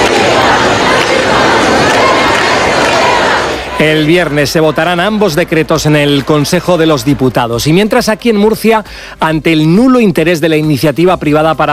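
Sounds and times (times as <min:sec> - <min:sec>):
murmuring voices of a crowd at a protest camp: 0:00.0 - 0:06.3
large crowd clapping outdoors at a protest camp: 0:00.0 - 0:08.7
speech: 0:03.8 - 0:11.7.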